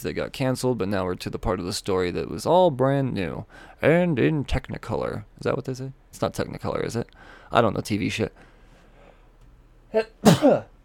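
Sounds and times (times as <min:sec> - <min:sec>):
speech: 0:00.0 - 0:08.5, 0:09.9 - 0:10.7
person sneezing: 0:10.2 - 0:10.7.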